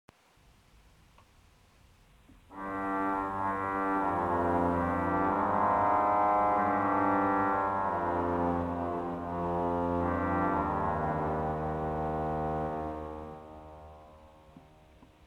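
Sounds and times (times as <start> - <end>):
pipe organ with cornopean and contrafagotto stops: 2.5 - 14.7.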